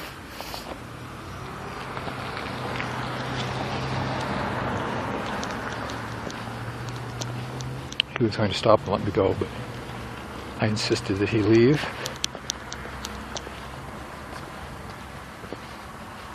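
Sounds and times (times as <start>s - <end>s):
faint outdoor crackle: 0.0s - 16.3s
car passing by: 0.7s - 16.3s
speech: 8.2s - 9.7s, 10.6s - 12.1s.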